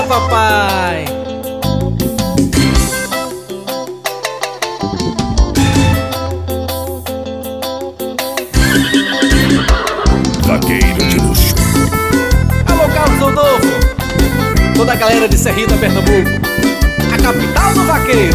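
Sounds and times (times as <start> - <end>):
loud busy instrumental music: 0.0 - 18.3
speech: 0.1 - 1.8, 14.8 - 18.3
horse whinnying: 8.5 - 11.9.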